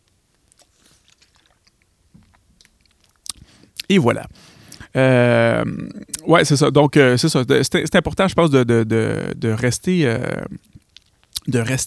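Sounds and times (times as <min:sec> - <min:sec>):
soft wet mouth clicks: 0:00.0 - 0:04.9, 0:10.6 - 0:11.5
sipping water: 0:00.0 - 0:06.3, 0:10.2 - 0:11.8
small gulping sounds: 0:00.0 - 0:06.3, 0:10.1 - 0:11.8
speech: 0:03.9 - 0:10.8, 0:11.5 - 0:11.8.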